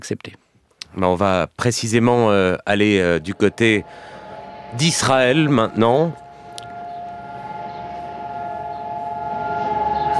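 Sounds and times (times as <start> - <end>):
speech: 0.0 - 6.2
commemoration siren wailing: 2.7 - 10.1.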